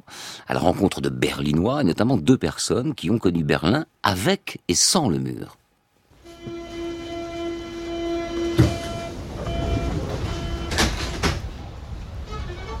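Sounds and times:
speech: 0.4 - 5.6
steady tonal whine: 6.2 - 10.8
metro train humming and rumbling at a station: 6.2 - 12.7
door-like thuds: 8.4 - 11.5.

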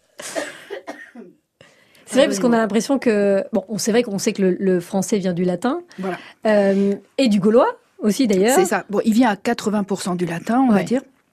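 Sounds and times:
person coughing: 0.2 - 1.4
speech: 2.1 - 11.1.

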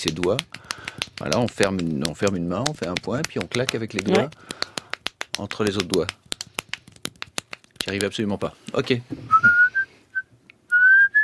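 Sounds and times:
speech: 0.0 - 4.7, 5.4 - 6.2, 7.9 - 9.6
person whistling: 9.3 - 11.2.

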